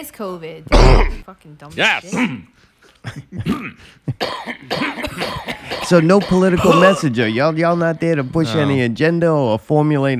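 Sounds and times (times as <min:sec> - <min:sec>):
speech: 0:00.0 - 0:10.1
harsh throaty raspy coughs: 0:00.7 - 0:01.2, 0:03.0 - 0:07.2.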